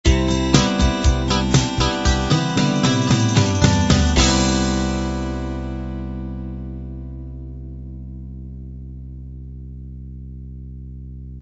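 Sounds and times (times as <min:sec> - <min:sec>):
light rock music ending: 0:00.0 - 0:07.8.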